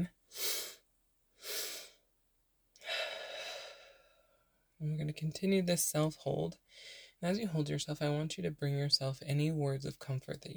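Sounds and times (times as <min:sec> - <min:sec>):
person breathing during a guided breathwork meditation: 0:00.3 - 0:00.8, 0:01.4 - 0:02.0, 0:02.8 - 0:04.5, 0:06.7 - 0:07.2
speech: 0:04.8 - 0:10.5.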